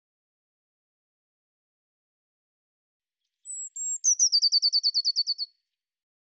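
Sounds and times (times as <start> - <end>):
Eurasian blue tit call with high notes and chattering trill: 3.5 - 5.5.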